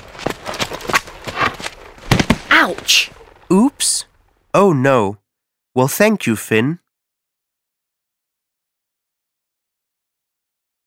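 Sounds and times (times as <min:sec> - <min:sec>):
horse hooves clip-clopping: 0:00.0 - 0:03.5
speech: 0:02.6 - 0:05.2, 0:05.8 - 0:06.8.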